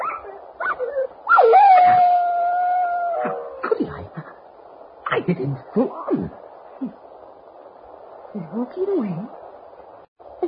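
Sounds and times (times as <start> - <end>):
dog yelping: 0.0 - 2.3
dog howling: 0.0 - 3.6
speech: 5.3 - 7.0, 8.4 - 9.4.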